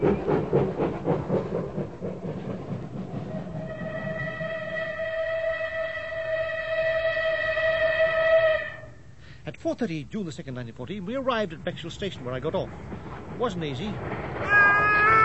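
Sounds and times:
steam train chugging with rattling wheels: 0.0s - 9.2s, 10.8s - 15.2s
steam train whistle blast: 3.6s - 9.0s, 14.4s - 15.2s
speech: 9.7s - 15.1s.

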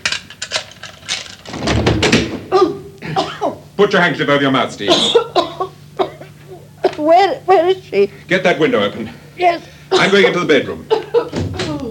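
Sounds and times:
door being forced open: 1.4s - 2.5s, 11.3s - 11.8s
speech: 3.8s - 5.4s, 7.0s - 11.0s
laughter: 9.9s - 11.8s.

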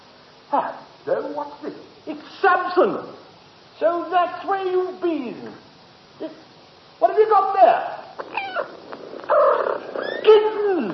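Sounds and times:
speech: 0.5s - 3.2s, 3.8s - 5.6s, 6.2s - 8.7s
newborn kittens mewing: 8.1s - 10.9s
cat calling: 8.2s - 10.9s.

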